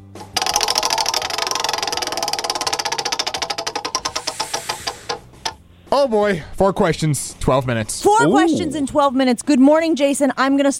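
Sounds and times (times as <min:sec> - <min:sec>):
prize wheel spinning and clicking: 0:00.0 - 0:05.6
speech: 0:05.9 - 0:10.7.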